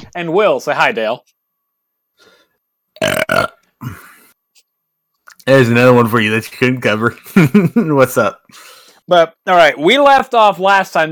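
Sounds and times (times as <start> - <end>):
speech: 0.2 - 1.4, 3.0 - 4.0, 5.5 - 11.1
person burping: 3.0 - 4.3.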